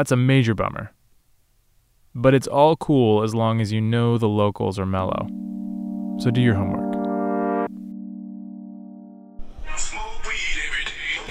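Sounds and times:
speech: 0.0 - 1.0, 2.1 - 5.6, 6.2 - 6.9
phone ringing with a musical electronic ringtone: 5.2 - 9.4.

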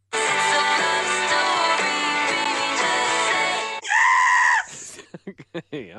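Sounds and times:
loud pop song remix with a steady beat: 0.0 - 3.8
strained wavering scream: 3.8 - 5.0
laughter: 4.8 - 5.9.

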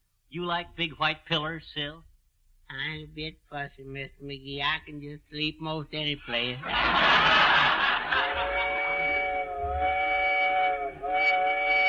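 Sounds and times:
speech: 0.3 - 2.1, 2.7 - 7.6
laughter: 6.6 - 9.4
long wavering train whistle: 8.2 - 11.8.

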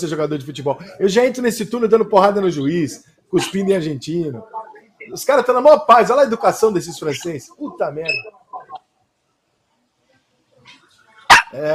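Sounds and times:
speech: 0.0 - 8.4, 11.5 - 11.7
dog barking: 11.3 - 11.6.

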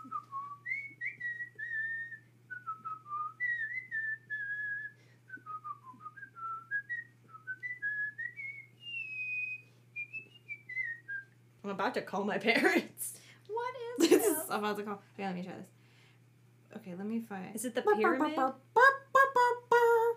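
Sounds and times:
people whistling a wandering tune: 0.0 - 11.3
steady low hum: 0.0 - 20.1
speech: 11.7 - 13.2, 14.0 - 15.8, 16.9 - 18.6.

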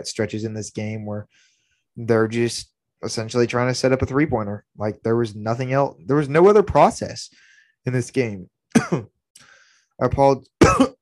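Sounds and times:
speech: 0.0 - 9.2, 10.0 - 11.0
man coughing: 8.7 - 9.1, 10.6 - 11.0.

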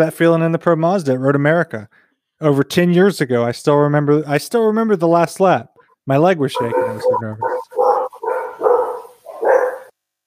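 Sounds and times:
speech: 0.0 - 7.8
dog barking: 6.6 - 9.9.

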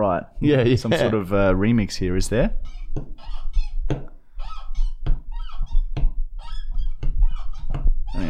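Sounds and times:
speech: 0.2 - 4.1
sharp thumps: 2.3 - 8.2
creaky door hinge squeaking: 2.5 - 8.2.

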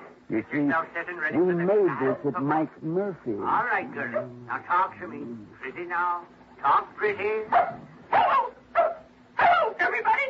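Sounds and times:
speech: 0.3 - 8.6
dog barking and yipping: 7.5 - 9.7.

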